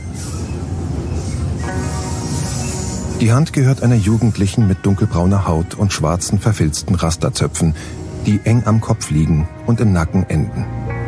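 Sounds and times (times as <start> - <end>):
moving train carriage rumbling and rattling: 0.0 - 11.0
speech: 3.2 - 10.9.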